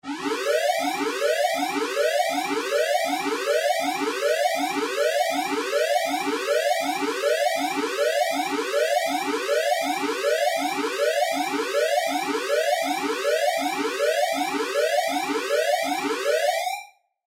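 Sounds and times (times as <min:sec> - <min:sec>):
sci-fi battle stations alarm: 0:00.0 - 0:17.1.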